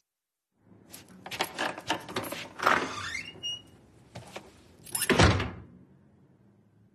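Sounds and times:
door rattling and creaking on its hinge: 1.2 - 3.8, 4.9 - 5.6.

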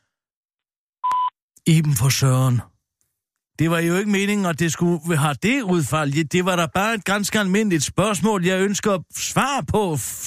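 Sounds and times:
voicemail beep tone: 1.0 - 1.4
speech: 1.6 - 2.7, 3.6 - 10.2.

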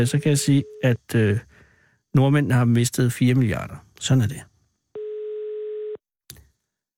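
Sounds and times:
speech: 0.0 - 1.5, 2.1 - 4.5
telephone ringback tone: 5.0 - 6.0.

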